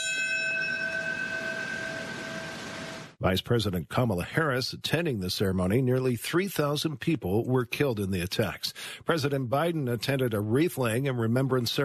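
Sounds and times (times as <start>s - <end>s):
large commemorative bell tolling: 0.0s - 3.0s
speech: 3.2s - 11.8s.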